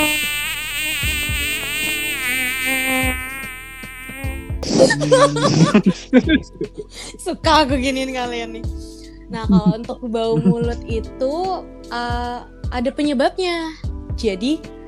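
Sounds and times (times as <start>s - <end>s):
high-pitched mosquito whine: 0.0s - 5.5s
chatter: 4.6s - 6.8s, 9.4s - 10.8s
person laughing: 4.6s - 7.2s, 9.4s - 10.8s
speech: 4.9s - 14.8s.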